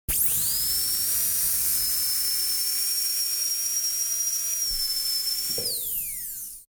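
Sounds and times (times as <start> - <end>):
turbine: 0.1 - 6.6.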